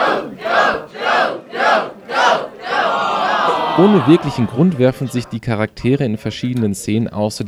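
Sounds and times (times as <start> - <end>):
laughter: 0.0 - 0.9, 2.0 - 7.0
cinema audience chanting: 0.0 - 5.7
cinema audience cheering: 0.0 - 6.6
speech: 3.8 - 7.4.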